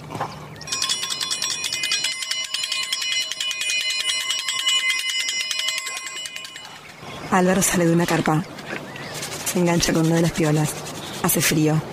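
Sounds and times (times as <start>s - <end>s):
metal triangle rung in a rapid roll at a campsite at dawn: 0.7s - 7.6s
speech: 7.3s - 8.6s, 9.5s - 11.9s.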